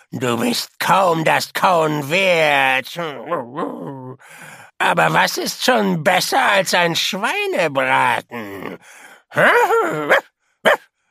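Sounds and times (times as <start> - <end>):
speech: 0.1 - 10.8
female dog barking: 10.1 - 10.9.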